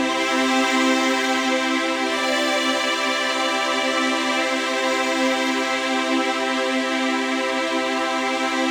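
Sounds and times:
strings: 0.0s - 8.7s.

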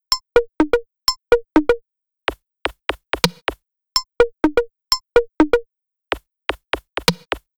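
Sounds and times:
house beat: 0.4s - 0.8s, 1.4s - 3.6s, 4.4s - 7.5s.

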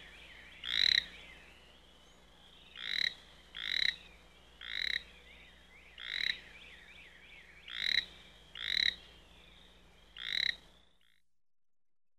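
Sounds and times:
frog giving loud rasping croaks: 0.6s - 1.1s, 2.8s - 4.0s, 4.6s - 5.0s, 6.0s - 6.4s, 7.7s - 9.0s, 10.2s - 10.6s.

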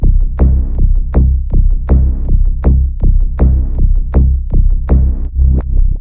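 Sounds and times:
downbeat music: 0.0s - 5.4s.

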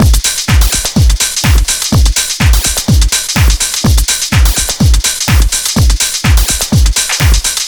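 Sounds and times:
dance beat: 0.0s - 7.6s.

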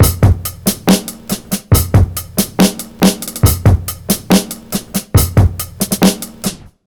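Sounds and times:
old school dubstep drum sample: 0.0s - 6.7s.

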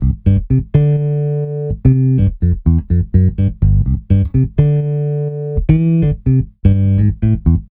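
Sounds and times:
funky disco house bass: 0.0s - 7.6s.

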